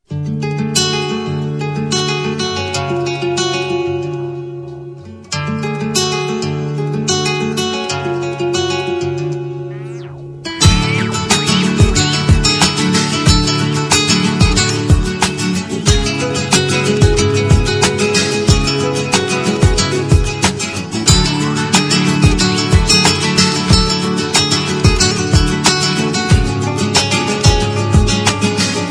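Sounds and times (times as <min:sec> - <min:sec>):
light guitar: 0:00.0 - 0:28.9.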